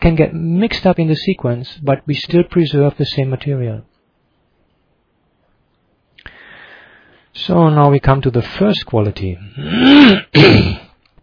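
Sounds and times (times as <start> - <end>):
speech: 0.0 - 3.9, 7.4 - 10.8
harsh rough-throated coughing: 9.6 - 11.0.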